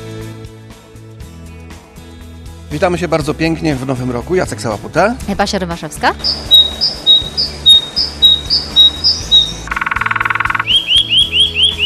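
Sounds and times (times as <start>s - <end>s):
speech: 2.7s - 7.0s
bird chirping with bright high chirps and rising tweets: 6.1s - 11.8s
bird's buzzy rattling trill: 6.2s - 10.8s.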